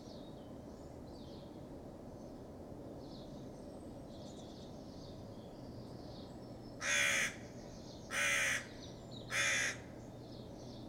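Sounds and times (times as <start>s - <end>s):
crow alarm calling with harsh caws in response to a fox: 6.8s - 7.4s, 8.1s - 8.7s, 9.3s - 9.9s.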